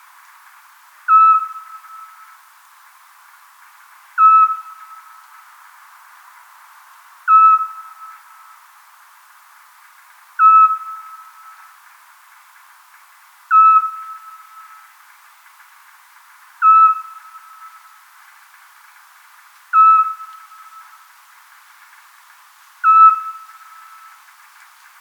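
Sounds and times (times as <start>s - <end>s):
Eurasian scops owl: 1.1s - 2.4s, 4.2s - 5.4s, 7.3s - 8.6s, 10.4s - 11.8s, 13.5s - 15.0s, 16.6s - 18.0s, 19.7s - 21.1s, 22.8s - 24.3s.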